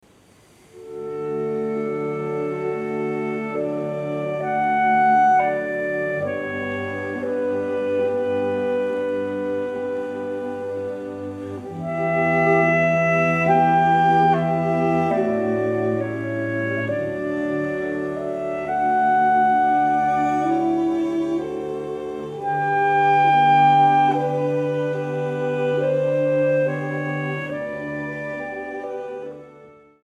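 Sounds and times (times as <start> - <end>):
clarinet quintet playing a larghetto in A major: 0.6 - 30.0.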